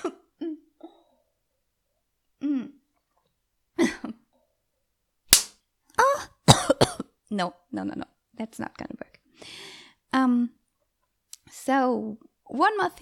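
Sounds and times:
person coughing: 0.0s - 1.0s, 6.5s - 7.1s
speech: 7.3s - 10.6s, 11.5s - 12.9s.

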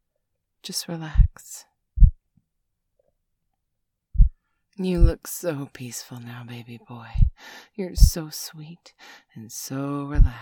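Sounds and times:
speech: 0.6s - 1.7s, 4.8s - 10.4s
slow deep heartbeat: 1.2s - 1.4s, 2.0s - 2.2s, 4.2s - 4.4s, 5.0s - 5.2s, 7.2s - 7.4s, 10.2s - 10.4s.

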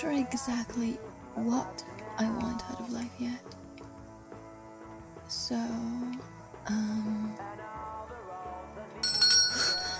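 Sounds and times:
speech: 0.0s - 3.6s, 5.3s - 7.5s
low steady background in a video store: 0.0s - 9.9s
bell ringing in a video store: 9.0s - 9.9s.

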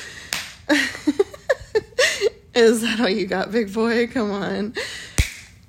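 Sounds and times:
hand slapping bare buttocks: 0.3s - 0.7s, 5.1s - 5.6s
speech: 2.6s - 4.9s.

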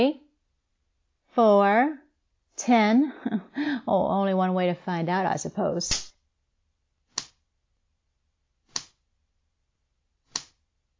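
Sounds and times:
speech: 0.0s - 0.2s, 1.4s - 2.0s, 2.6s - 6.1s
sharp crisp slaps on skin: 5.9s - 6.2s, 7.1s - 7.4s, 8.7s - 9.0s, 10.3s - 10.6s.

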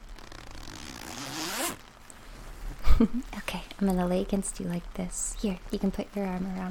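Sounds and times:
sleeping bag zipper unzipping: 0.0s - 1.9s
speech: 3.0s - 6.6s.

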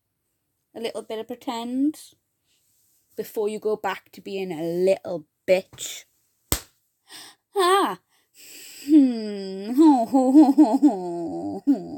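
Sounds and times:
speech: 0.8s - 2.2s, 3.2s - 6.1s, 7.1s - 11.9s
light playful slap: 6.5s - 6.7s
breathy gasps: 7.1s - 7.4s
drawn-out wordless whimpering: 8.8s - 11.9s.

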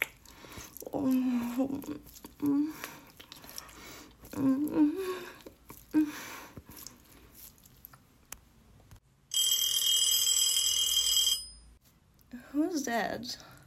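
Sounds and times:
speech: 0.9s - 3.0s, 4.4s - 6.3s, 12.9s - 13.5s
telephone ringing with a shrill electronic trill: 9.3s - 11.8s.

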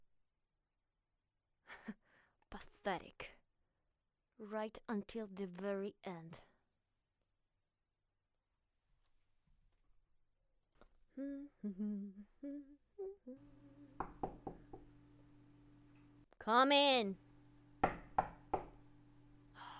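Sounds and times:
speech: 1.8s - 3.3s, 4.4s - 6.5s, 11.2s - 13.6s, 16.4s - 17.2s
short breathy exhale or sigh: 11.2s - 14.0s, 19.5s - 19.7s
faint steady hum: 11.2s - 19.7s
sharp knocks on a wooden door: 14.0s - 14.8s, 17.8s - 18.8s.

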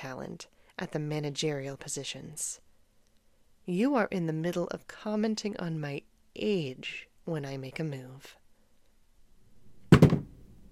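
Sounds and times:
speech: 0.0s - 2.7s, 3.7s - 8.4s
shoe slipped off a foot dropping onto a hard floor: 9.9s - 10.4s.

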